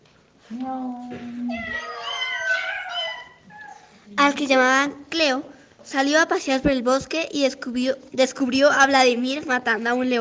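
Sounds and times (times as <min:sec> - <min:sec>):
speech: 0:00.5 - 0:02.0, 0:04.1 - 0:10.2
cat meowing: 0:01.5 - 0:03.9.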